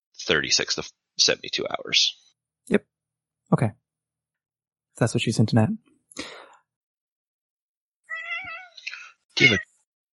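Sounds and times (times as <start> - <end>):
speech: 0.2 - 2.9, 3.5 - 3.8, 5.0 - 6.4, 9.4 - 9.7
cat meowing: 8.1 - 9.6
breathy noise: 8.7 - 9.6.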